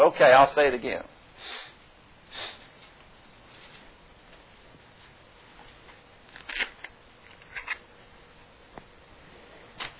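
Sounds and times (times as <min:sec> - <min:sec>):
speech: 0:00.1 - 0:01.7
audience turning thin Bible pages in a large room: 0:05.7 - 0:07.8.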